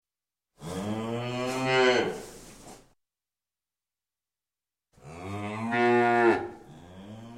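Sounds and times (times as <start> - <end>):
cow giving long deep rich moos: 0.6 - 2.2, 5.0 - 7.3.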